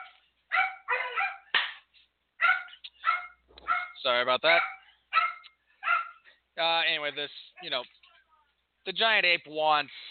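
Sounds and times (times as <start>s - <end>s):
dogs barking: 0.0s - 1.6s, 2.4s - 6.4s
speech: 4.0s - 4.7s, 6.6s - 8.0s, 8.8s - 10.0s.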